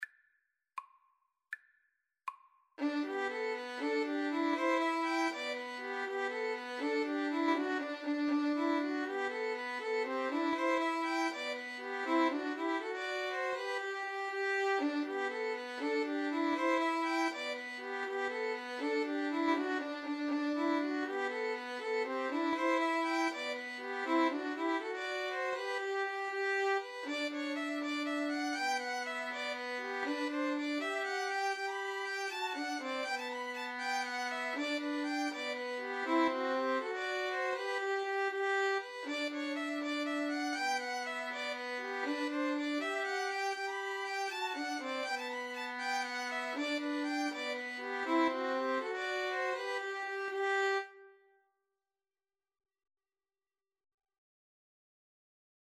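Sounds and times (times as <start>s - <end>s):
cello: 2.8s - 51.0s
two violins: 2.8s - 51.1s.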